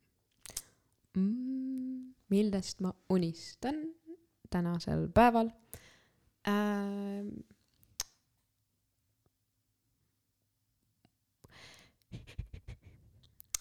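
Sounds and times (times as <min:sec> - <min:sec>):
speech: 0:01.2 - 0:01.4, 0:02.3 - 0:05.8, 0:06.4 - 0:07.6
breathy exhale and quick uneven panting breaths: 0:11.5 - 0:13.2.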